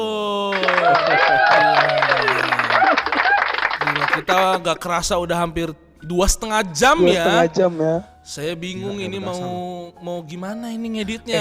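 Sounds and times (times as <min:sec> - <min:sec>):
laughter: 0:00.0 - 0:05.4, 0:06.5 - 0:08.0, 0:08.6 - 0:09.7, 0:11.1 - 0:11.3
voices calling out and talking: 0:00.0 - 0:11.3
quick dense hand clapping from a small group: 0:00.5 - 0:05.1
speech: 0:04.3 - 0:11.3.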